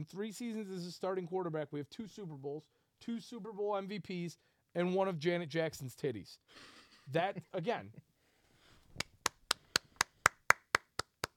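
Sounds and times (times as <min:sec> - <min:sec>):
speech: 0:00.0 - 0:08.1
hand clapping: 0:09.0 - 0:11.3.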